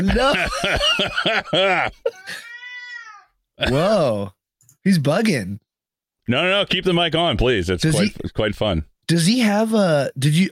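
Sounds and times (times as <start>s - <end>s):
laughter: 0.0s - 2.5s
speech: 0.0s - 2.5s, 3.6s - 5.6s, 6.3s - 10.5s
cat meowing and yowling: 2.2s - 3.4s.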